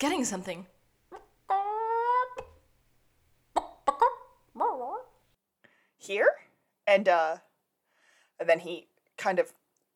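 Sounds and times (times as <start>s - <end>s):
speech: 0.0s - 0.8s, 6.0s - 7.5s, 8.4s - 9.6s
person imitating chicken clucking and squawking: 1.1s - 2.6s, 3.5s - 5.2s.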